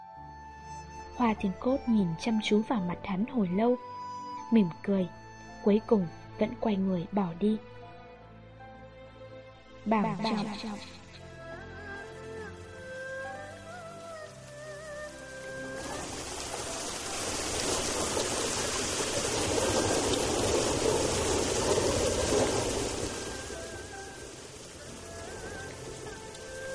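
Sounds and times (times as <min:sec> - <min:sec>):
speech: 0:01.2 - 0:03.9, 0:04.5 - 0:07.8, 0:09.8 - 0:11.0
heavy rain falling outside: 0:10.0 - 0:26.7.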